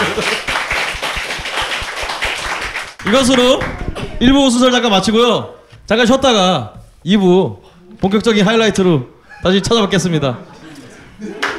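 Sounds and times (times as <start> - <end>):
laughter: 0.0 - 0.5, 9.2 - 11.5
steady rhythmic hand clapping: 0.0 - 4.2, 11.4 - 11.5
speech: 3.1 - 10.5.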